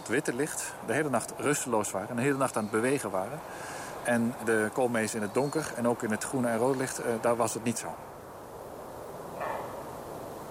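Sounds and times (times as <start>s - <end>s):
steady hiss: 0.0s - 10.4s
speech: 0.1s - 8.1s
faint red deer hoarse bark: 9.3s - 10.0s.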